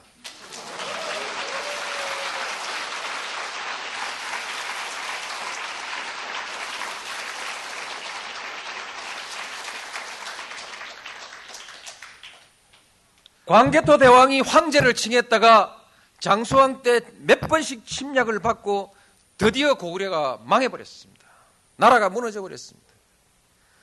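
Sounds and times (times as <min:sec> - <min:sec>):
audience applause: 0:00.2 - 0:12.5
speech: 0:13.5 - 0:21.1, 0:21.8 - 0:22.8.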